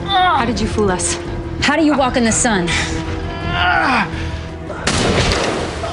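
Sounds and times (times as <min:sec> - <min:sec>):
speech: 0:00.5 - 0:04.2
gunshot effect in an audio drama: 0:04.8 - 0:05.9.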